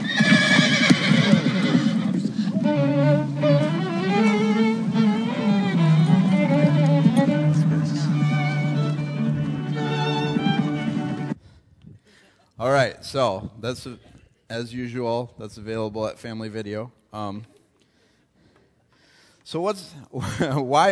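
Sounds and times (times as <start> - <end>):
restless horse whinnying and neighing: 0.0 - 3.4
horse hooves clopping: 0.0 - 11.4
speech: 13.1 - 17.6, 19.5 - 20.8.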